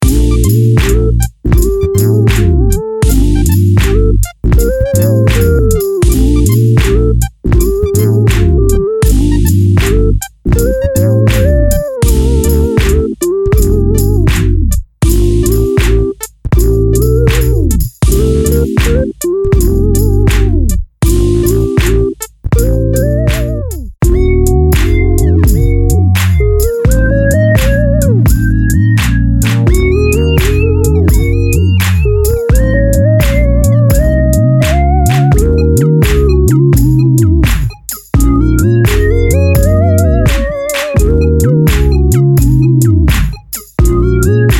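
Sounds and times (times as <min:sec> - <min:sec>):
Moog synthesizer bass: 0:00.0 - 0:44.5.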